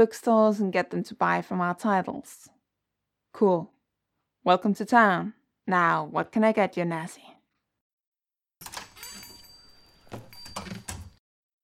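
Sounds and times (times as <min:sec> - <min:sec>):
speech: 0:00.0 - 0:02.5, 0:03.4 - 0:03.8, 0:04.4 - 0:07.3
diner door swinging open: 0:08.6 - 0:11.2.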